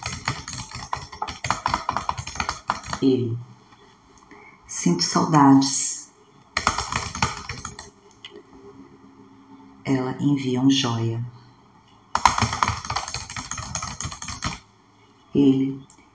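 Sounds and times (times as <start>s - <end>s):
rapid keyboard typing: 0.0s - 3.1s, 6.6s - 8.4s, 12.1s - 14.6s
speech: 3.0s - 3.5s, 4.8s - 5.8s, 9.9s - 11.4s, 15.4s - 15.9s.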